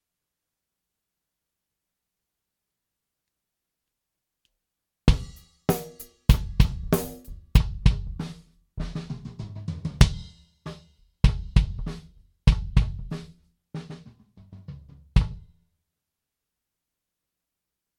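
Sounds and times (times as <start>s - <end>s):
compressed kick drum: 5.1s - 8.2s, 11.2s - 13.1s.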